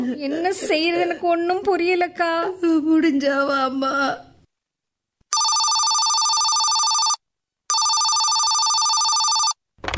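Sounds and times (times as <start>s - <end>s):
speech: 0.0s - 4.3s
telephone bell ringing: 5.3s - 9.6s.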